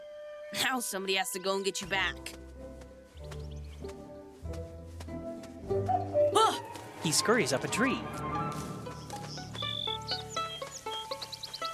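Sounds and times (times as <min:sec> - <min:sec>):
speech: 0:00.5 - 0:02.5, 0:07.1 - 0:08.3
birds chirping while flying overhead: 0:02.9 - 0:11.7.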